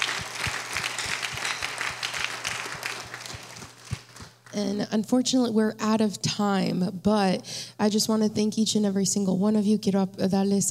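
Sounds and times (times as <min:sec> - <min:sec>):
audience applauding: 0:00.0 - 0:04.6
speech: 0:04.6 - 0:10.6.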